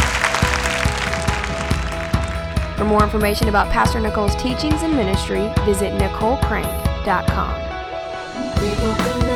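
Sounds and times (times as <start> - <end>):
church congregation clapping hands in praise: 0.0 - 2.7
speech: 2.8 - 7.7, 8.6 - 9.2.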